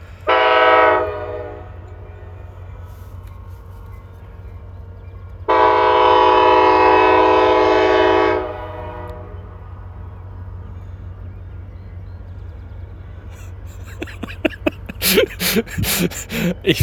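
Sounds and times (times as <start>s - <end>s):
deep loud train horn: 5.5s - 9.5s
laughter: 13.4s - 16.8s
speech: 16.0s - 16.8s.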